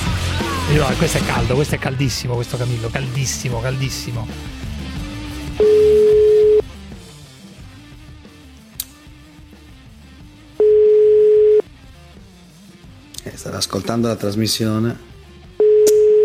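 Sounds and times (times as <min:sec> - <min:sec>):
speech: 0:00.7 - 0:04.6, 0:05.6 - 0:05.8, 0:13.5 - 0:15.1
ringing tone of an outgoing telephone call: 0:05.6 - 0:06.6, 0:10.6 - 0:11.6, 0:15.6 - 0:16.2.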